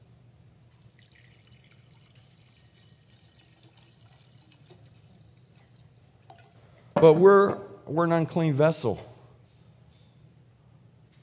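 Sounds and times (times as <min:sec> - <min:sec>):
low hum: 0:00.0 - 0:11.2
water pouring into a container: 0:00.6 - 0:06.6
speech: 0:07.0 - 0:09.1.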